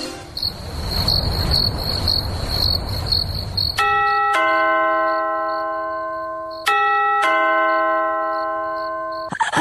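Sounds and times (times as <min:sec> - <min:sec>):
crickets chirping at night: 0:00.2 - 0:06.8, 0:07.7 - 0:09.5
doorbell two-tone ding-dong chimes at night: 0:03.8 - 0:09.3.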